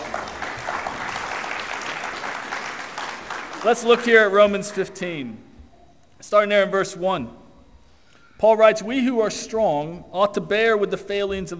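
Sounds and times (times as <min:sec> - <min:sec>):
audience applause: 0:00.0 - 0:04.7
speech: 0:03.6 - 0:05.5, 0:06.2 - 0:07.4, 0:08.4 - 0:11.5.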